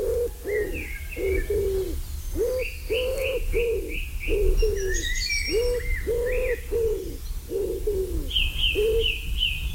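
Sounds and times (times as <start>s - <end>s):
common wood pigeon cooing: 0.0s - 9.2s.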